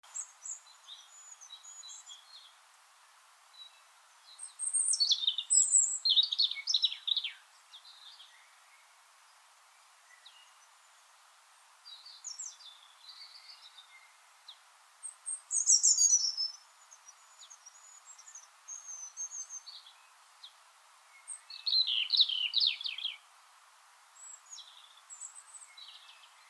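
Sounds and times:
faint background hiss: 0.0 - 26.4
European robin Erithacus rubecula singing: 0.1 - 2.6, 3.5 - 8.9, 11.8 - 23.3, 24.2 - 26.4.

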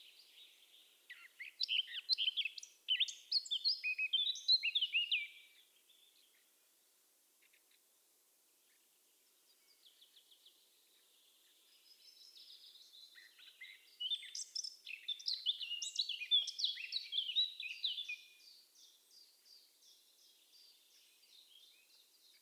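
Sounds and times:
Eurasian blackcap Sylvia atricapilla singing: 0.0 - 5.4, 11.8 - 22.3.

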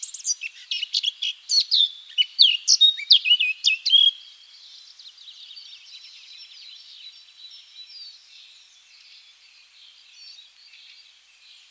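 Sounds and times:
Eurasian blackcap song: 0.0 - 11.6.

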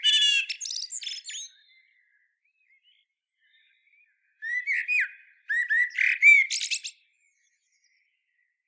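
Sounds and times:
common blackbird Turdus merula song phrase: 0.0 - 8.6.

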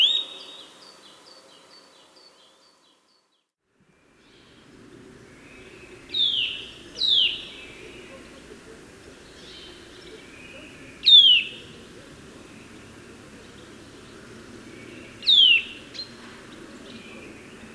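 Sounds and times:
background noise: 0.0 - 17.7
Eurasian nuthatch Sitta europaea calling: 5.4 - 17.7.

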